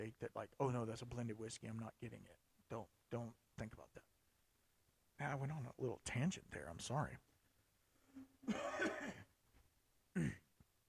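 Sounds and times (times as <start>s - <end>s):
speech: 0.0s - 4.1s, 5.2s - 7.3s, 8.2s - 9.2s, 10.2s - 10.4s
person coughing with a throat-clearing rasp: 8.4s - 9.3s, 10.2s - 10.4s.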